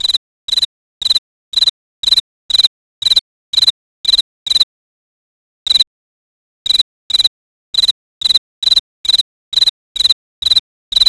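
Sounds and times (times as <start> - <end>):
cricket: 0.0 - 4.7, 5.7 - 5.9, 6.7 - 11.0.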